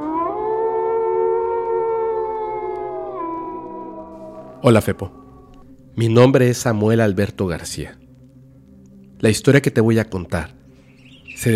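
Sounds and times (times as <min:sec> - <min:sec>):
single long wolf howl: 0:00.0 - 0:05.7
speech: 0:04.6 - 0:05.2, 0:06.0 - 0:08.0, 0:09.2 - 0:10.6, 0:11.4 - 0:11.5.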